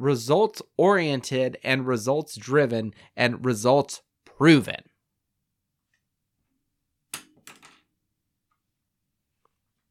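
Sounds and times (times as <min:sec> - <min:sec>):
speech: 0:00.0 - 0:04.9
pencil clattering onto a desk: 0:07.1 - 0:07.9.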